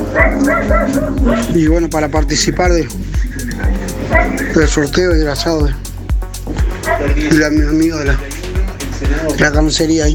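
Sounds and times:
dog barking while being fed: 0.1s - 1.6s, 3.5s - 4.6s, 6.8s - 7.2s
speech: 0.1s - 5.9s, 7.0s - 8.3s, 9.0s - 10.1s.

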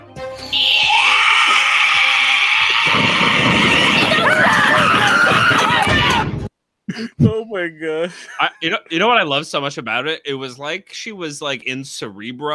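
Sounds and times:
speech: 0.4s - 0.8s, 6.9s - 12.5s
woman's long piercing scream: 0.4s - 6.3s
rumbling chaotic wash of noise: 0.4s - 6.5s.

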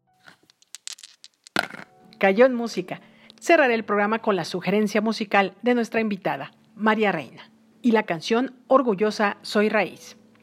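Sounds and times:
dice clattering across a hard surface: 0.2s - 2.0s
speech: 2.2s - 10.2s.

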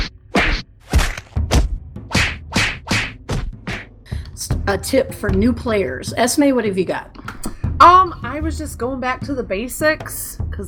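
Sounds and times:
sharp wooden whacks with brief rustling: 0.0s - 3.9s
fist punching a tree: 0.4s - 3.9s
speech: 4.4s - 7.2s, 7.8s - 10.6s.

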